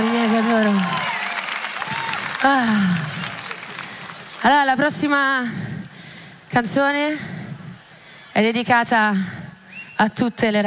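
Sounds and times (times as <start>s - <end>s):
audience applause on a music show: 0.0s - 4.9s
speech: 2.4s - 3.1s, 4.4s - 5.6s, 6.5s - 7.3s, 8.4s - 9.4s, 10.0s - 10.6s.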